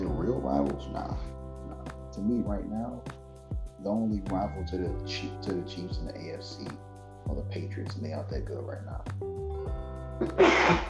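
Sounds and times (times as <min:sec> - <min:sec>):
speech: 0:00.3 - 0:01.4, 0:02.2 - 0:03.2, 0:03.8 - 0:10.8
person sneezing: 0:10.2 - 0:10.8.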